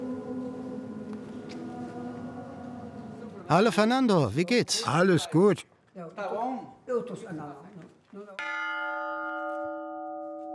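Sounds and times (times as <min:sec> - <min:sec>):
speech: 0:03.5 - 0:08.5
swinging bell strike: 0:08.4 - 0:10.5.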